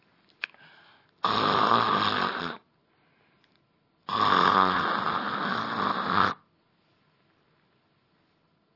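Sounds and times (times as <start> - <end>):
voice imitating loud rasping snoring: 1.2 - 2.6, 4.1 - 6.5.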